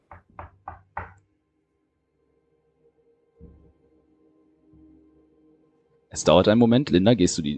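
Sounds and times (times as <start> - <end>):
knocking on a wooden door: 0.0 - 1.2
speech: 6.1 - 7.5.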